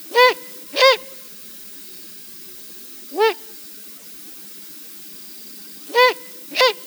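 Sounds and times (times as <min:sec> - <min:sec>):
owl parents calling: 0:00.0 - 0:01.3, 0:05.8 - 0:06.8.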